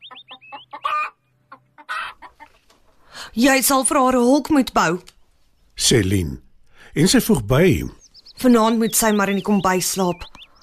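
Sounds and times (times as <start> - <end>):
farm hen clucking and squawking: 0.0 - 3.0, 7.0 - 10.6
speech: 3.4 - 5.1, 5.9 - 10.3.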